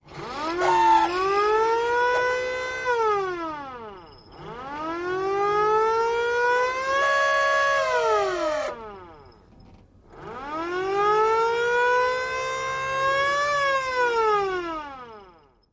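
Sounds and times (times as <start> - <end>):
hand turn siren wailing: 0.1 - 15.6.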